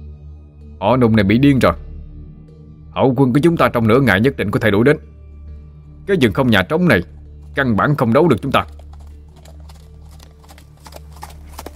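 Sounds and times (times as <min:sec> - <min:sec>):
speech: 0:00.8 - 0:01.8, 0:03.0 - 0:05.1, 0:06.1 - 0:08.8
horse hooves clip-clopping through a city gate: 0:07.2 - 0:11.7.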